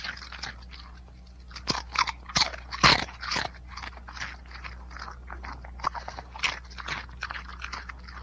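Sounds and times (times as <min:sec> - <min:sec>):
dog crunching light crisp potato chips: 0:00.0 - 0:08.2
low steady hum: 0:00.0 - 0:08.2.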